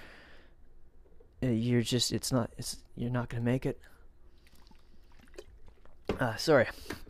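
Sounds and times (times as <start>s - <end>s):
speech: 1.6s - 3.9s, 6.2s - 7.0s
water sloshing in a water bottle: 4.3s - 6.5s
person gulping water from a water bottle: 4.4s - 6.1s.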